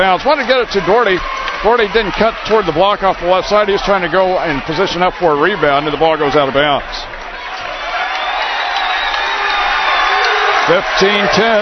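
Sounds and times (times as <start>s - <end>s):
speech: 0.0s - 7.2s, 10.7s - 11.6s
large arena crowd of fans cheering during a game: 0.0s - 11.6s
scattered whoops from fans: 7.7s - 10.7s.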